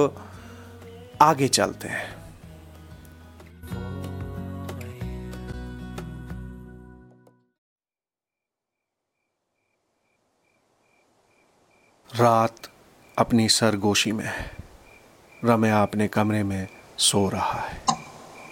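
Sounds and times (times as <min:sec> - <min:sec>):
speech: 0:00.0 - 0:00.3, 0:01.2 - 0:02.2, 0:12.2 - 0:14.6, 0:15.4 - 0:18.0
music: 0:00.0 - 0:07.6
wall clock ticking: 0:17.9 - 0:18.5.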